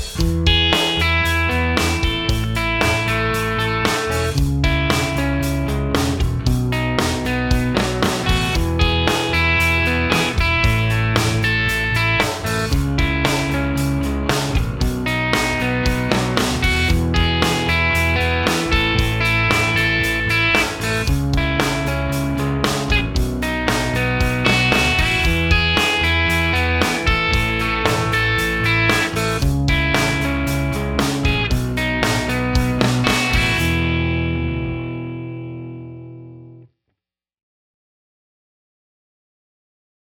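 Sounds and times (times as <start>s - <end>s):
major chord progression in root position: 0.2s - 36.6s.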